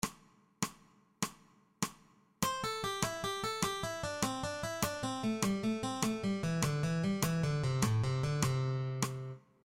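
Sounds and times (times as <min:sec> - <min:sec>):
alternately strummed descending eighth-note triplet motif: 0:02.4 - 0:09.4.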